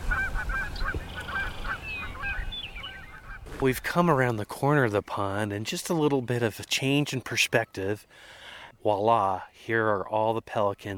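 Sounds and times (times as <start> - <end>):
Canada geese honking as they fly in at a pond: 0.0 - 3.7
speech: 3.6 - 10.9.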